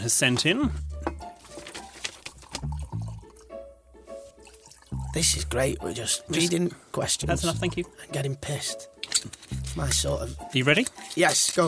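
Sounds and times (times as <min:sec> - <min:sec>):
speech: 0:00.0 - 0:00.9, 0:05.2 - 0:11.6
drink being poured into a glass: 0:02.4 - 0:03.5, 0:04.3 - 0:05.3.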